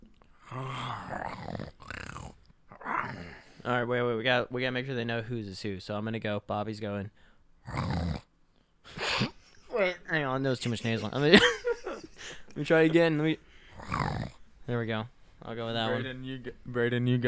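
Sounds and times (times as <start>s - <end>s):
people imitating TikTok-style growls with their voices: 0.4s - 3.5s
speech: 0.5s - 1.8s, 3.2s - 8.0s, 10.4s - 11.7s, 12.6s - 17.2s.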